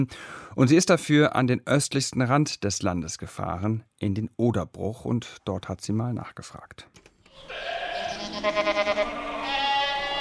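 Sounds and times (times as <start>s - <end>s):
speech: 0.0s - 7.8s
goats bleating in a barn: 7.4s - 10.1s.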